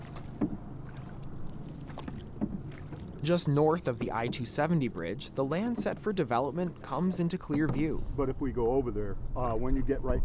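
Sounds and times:
canoe paddle dipping and pulling through river water: 0.0s - 8.1s
soft splashes of paddle: 0.0s - 8.1s
light wind: 0.0s - 10.2s
steady wash of moving river water: 0.0s - 10.2s
speech: 3.2s - 10.2s.

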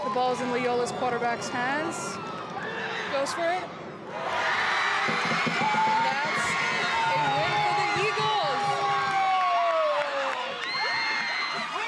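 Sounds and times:
speech: 0.2s - 2.4s, 3.1s - 5.9s
cheering and whoops: 1.9s - 3.2s, 4.1s - 11.8s
crowd of girls screaming and shrieking in celebration after game win: 4.4s - 11.8s.

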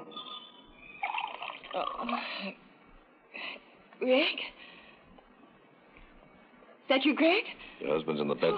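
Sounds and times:
drink pouring into a glass with faint glassy ringing: 1.0s - 2.1s
speech: 2.0s - 2.7s, 4.0s - 4.6s, 6.9s - 8.5s.

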